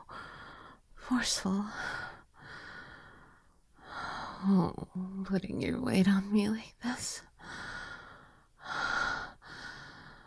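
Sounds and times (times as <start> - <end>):
speech: 1.1 - 2.0, 4.4 - 7.3
heavy breathing close to the microphone: 1.7 - 4.4, 7.4 - 10.2.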